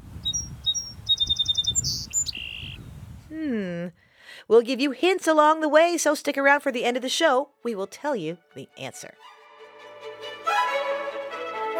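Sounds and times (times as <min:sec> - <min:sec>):
bird singing clear high notes: 0:00.2 - 0:03.0
speech: 0:03.3 - 0:09.3.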